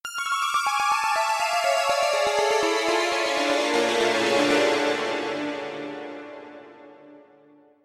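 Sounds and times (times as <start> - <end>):
fat synth piano: 0.1 - 7.5.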